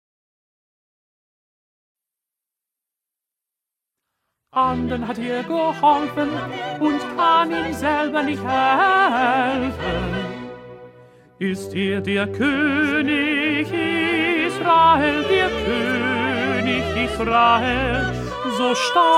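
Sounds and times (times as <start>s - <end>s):
second tenor voice singing: 4.6s - 10.6s, 11.4s - 19.1s.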